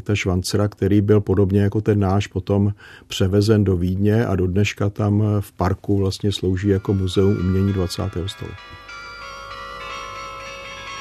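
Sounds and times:
speech: 0.0s - 8.9s
electric carillon playing from a high tower: 6.3s - 10.9s.

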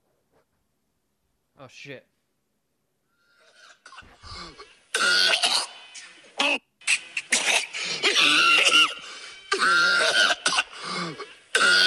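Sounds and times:
speech: 1.6s - 2.1s
gross phlegmy cough from a played audio drop: 3.8s - 5.8s, 6.4s - 11.8s.

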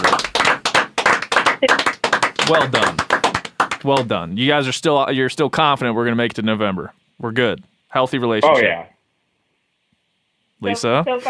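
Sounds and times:
hands clapping: 0.0s - 4.2s
speech: 2.5s - 3.0s, 3.8s - 8.9s, 10.6s - 11.2s.

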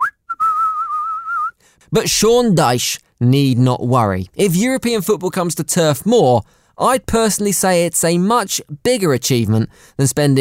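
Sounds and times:
person whistling nonchalantly: 0.0s - 1.6s
speech: 1.9s - 10.3s.

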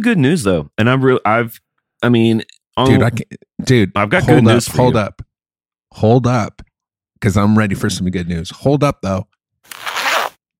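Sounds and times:
speech: 0.0s - 5.2s, 5.9s - 9.9s
zipper being pulled: 9.7s - 10.4s.

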